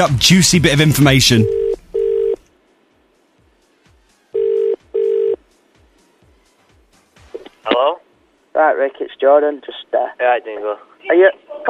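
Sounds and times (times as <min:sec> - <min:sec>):
speech: 0:00.0 - 0:01.6, 0:08.7 - 0:11.6
telephone ringing tone heard down the line: 0:01.4 - 0:02.4, 0:04.4 - 0:05.4.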